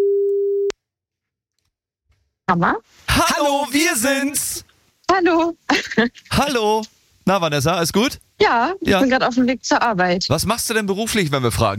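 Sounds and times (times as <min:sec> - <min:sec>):
telephone call tone while calling a listener for a radio call-in game: 0:00.0 - 0:00.7
speech: 0:02.5 - 0:11.7.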